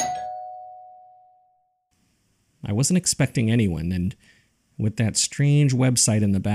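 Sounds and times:
doorbell chime: 0.0s - 1.6s
speech: 2.6s - 6.5s.

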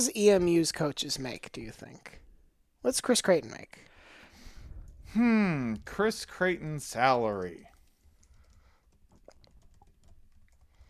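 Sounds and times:
speech: 0.0s - 2.2s, 2.8s - 3.9s, 5.1s - 7.7s
fingers typing on a computer keyboard: 7.3s - 10.8s.

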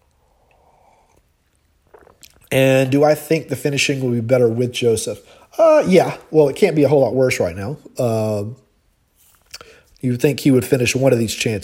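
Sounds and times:
slurp of a hot coffee: 0.0s - 3.0s
speech: 2.5s - 8.6s, 10.0s - 11.6s.

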